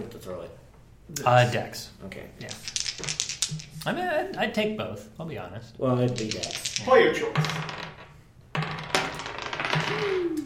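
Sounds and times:
speech: 0.0s - 7.8s, 9.9s - 10.4s
dice rolling on a hard tabletop: 2.4s - 4.0s, 6.0s - 10.2s.

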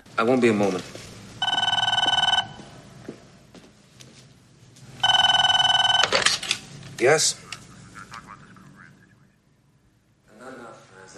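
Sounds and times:
speech: 0.2s - 1.0s, 7.0s - 7.5s
faint footsteps: 0.4s - 5.0s
telephone bell ringing in loud bright trilling bursts: 1.4s - 2.7s, 5.0s - 6.3s.

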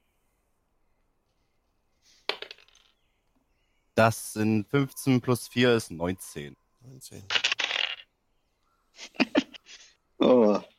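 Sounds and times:
dice clattering onto a hard surface: 2.2s - 3.0s, 7.3s - 8.1s
speech: 4.0s - 7.4s, 9.0s - 9.3s, 10.2s - 10.7s
laughter: 9.0s - 9.9s.

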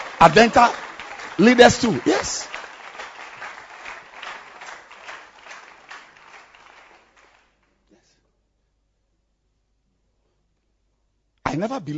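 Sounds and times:
church audience clapping hands: 0.0s - 7.8s
speech: 0.2s - 2.5s, 11.6s - 11.9s.

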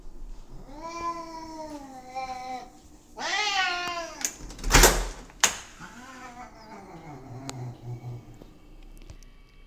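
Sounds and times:
cat meowing impatiently to be let out: 0.6s - 4.3s, 5.8s - 8.1s
door latch clacks as the door is opened: 4.2s - 5.7s.

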